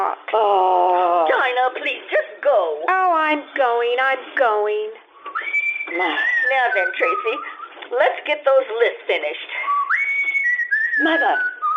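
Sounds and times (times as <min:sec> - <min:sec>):
speech: 0:00.1 - 0:05.0, 0:05.9 - 0:09.7, 0:11.0 - 0:11.5
person whistling: 0:05.2 - 0:07.8, 0:09.6 - 0:11.7.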